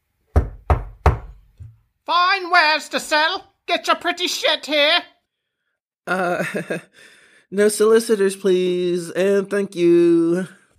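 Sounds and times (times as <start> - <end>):
firm knocking on a door: 0.3 - 1.8
speech: 2.1 - 5.1, 6.1 - 10.6.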